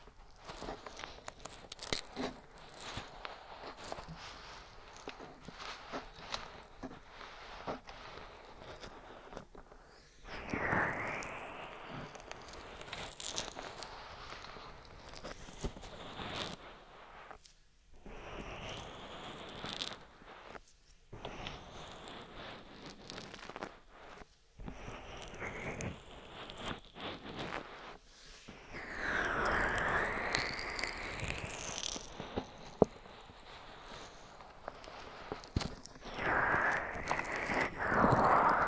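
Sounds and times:
ear massage with oil and bare hands, wet rubbing on microphone: 0.0s - 38.6s.

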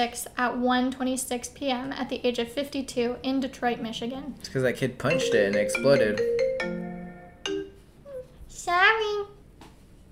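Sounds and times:
speech: 0.0s - 6.8s
computer call notification ringing in bell-like electronic tones: 5.1s - 7.8s.

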